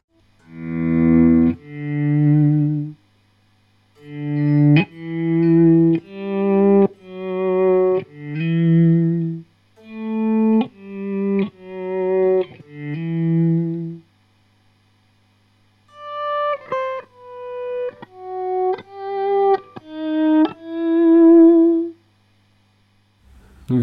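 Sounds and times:
guitar notes with the initial attack removed swelling in softly: 0.4 - 3.0, 4.0 - 14.1, 15.9 - 22.0.

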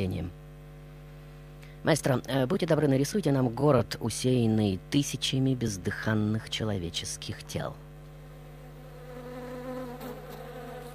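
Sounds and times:
speech: 1.8 - 7.8
many flies buzzing: 8.2 - 10.9.

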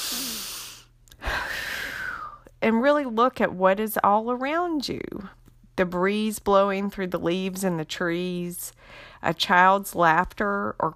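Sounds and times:
deep breath taken slowly: 0.0 - 2.4, 8.8 - 9.2
speech: 2.6 - 10.9.

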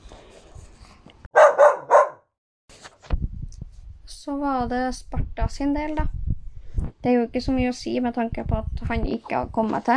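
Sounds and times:
dog barking: 1.3 - 2.3
speech: 4.3 - 6.2, 7.0 - 9.9.

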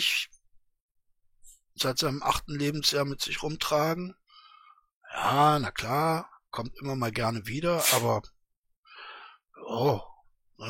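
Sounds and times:
speech: 0.0 - 0.3, 1.8 - 4.2, 5.2 - 8.4, 9.6 - 10.6
person sneezing: 7.8 - 8.2.

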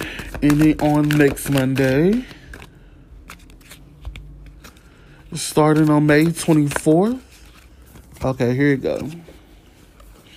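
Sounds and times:
tarot cards slapping together: 0.0 - 4.8, 5.4 - 9.3
tarot card deck shuffling: 0.0 - 10.3
speech: 0.4 - 2.3, 5.3 - 7.3, 8.2 - 9.3.

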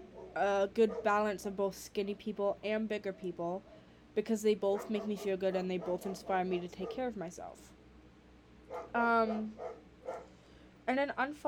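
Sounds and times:
dog barking: 0.1 - 1.3, 4.8 - 7.1, 8.7 - 10.3
speech: 0.4 - 7.8, 8.8 - 10.3, 10.9 - 11.4.

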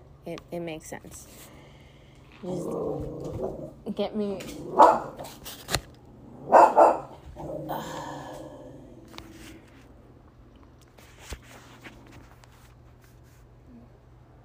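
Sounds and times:
speech: 0.2 - 1.6, 2.4 - 5.8, 7.4 - 8.4
dog barking: 4.7 - 5.3, 6.5 - 7.2.

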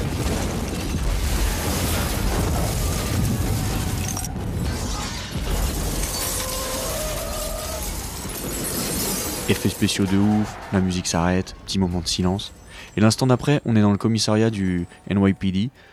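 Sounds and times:
big explosion effect with crashing debris: 0.0 - 12.9
faint ringing tones: 8.4 - 15.9
speech: 9.6 - 15.9.

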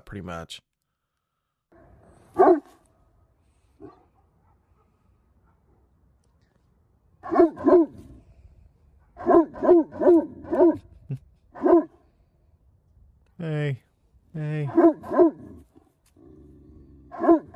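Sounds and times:
speech: 0.1 - 0.7, 13.4 - 13.8, 14.4 - 15.4
Great Pyrenees livestock herding dog barking deep and loud: 2.3 - 2.8, 3.8 - 5.8, 7.2 - 8.1, 9.0 - 10.9, 11.6 - 12.0, 14.7 - 15.6, 17.1 - 17.5.

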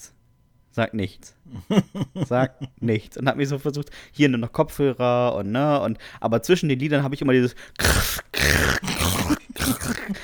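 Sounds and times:
speech: 0.8 - 9.0, 9.7 - 10.2
voice imitating crunchy chewing of cucumber: 7.8 - 10.2.

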